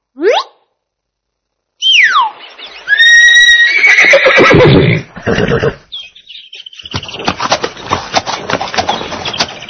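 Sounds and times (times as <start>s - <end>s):
horse neighing: 2.9s - 5.9s
horse hooves clattering on a hard surface: 6.5s - 9.6s.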